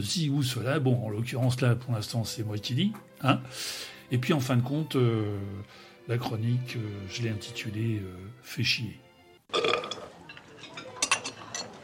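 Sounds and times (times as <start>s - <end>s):
speech: 0.0s - 9.0s
loud rasping burp: 9.5s - 10.1s.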